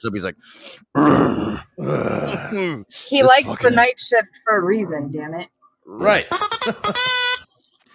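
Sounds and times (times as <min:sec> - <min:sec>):
speech: 0:00.0 - 0:07.2
person imitating the grunt of a tired motel front-desk clerk: 0:00.9 - 0:03.8
laughter: 0:06.2 - 0:07.4.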